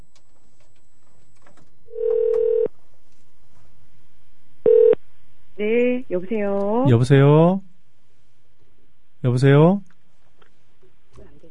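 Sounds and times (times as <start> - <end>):
telephone dialing and ringing tones over a phone line: 1.9 - 2.7, 4.7 - 5.0
speech: 5.6 - 7.7, 9.2 - 9.9.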